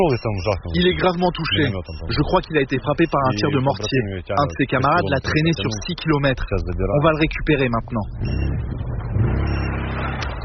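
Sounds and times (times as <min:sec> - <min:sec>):
speech: 0:00.0 - 0:08.9
quad bike engine arriving in a combat zone: 0:08.1 - 0:10.4.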